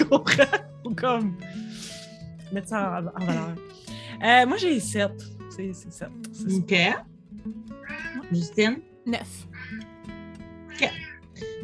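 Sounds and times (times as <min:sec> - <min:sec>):
laughter: 0:00.0 - 0:00.7, 0:03.2 - 0:03.6
speech: 0:00.1 - 0:09.8
cat meowing: 0:07.8 - 0:08.3.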